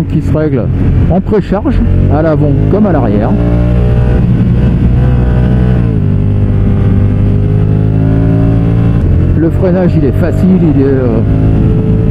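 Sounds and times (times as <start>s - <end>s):
speech: 0.0s - 3.8s, 9.4s - 11.6s
Honda touring motorcycle engine droning while riding: 0.0s - 12.0s.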